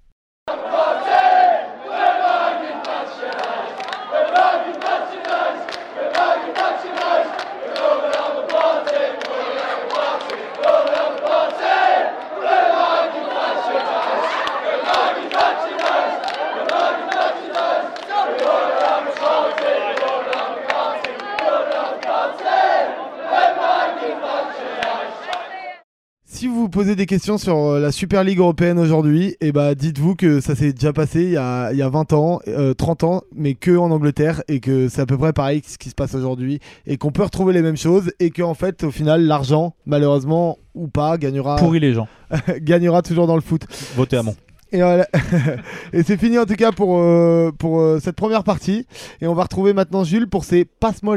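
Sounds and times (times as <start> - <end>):
football supporters chanting in unison in a stadium: 0.5 - 25.8
laughter: 13.1 - 17.7, 41.6 - 42.8, 44.9 - 46.2
speech: 26.8 - 51.1.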